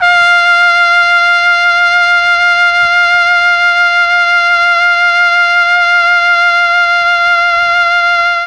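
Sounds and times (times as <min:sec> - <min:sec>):
mellotron chamber trumpet F3 note: 0:00.0 - 0:08.4.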